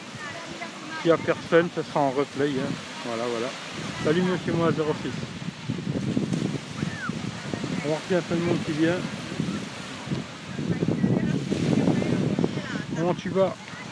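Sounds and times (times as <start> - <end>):
surf at the beach: 0.0 - 13.9
wind at the beach: 0.0 - 13.9
speech: 1.0 - 5.4, 7.8 - 9.2, 13.0 - 13.7.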